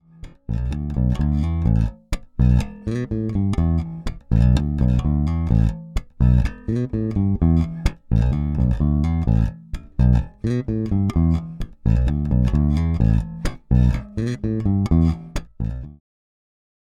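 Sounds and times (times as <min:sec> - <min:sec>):
Fender Precision Bass through passive neck pickup: 0:00.0 - 0:16.0.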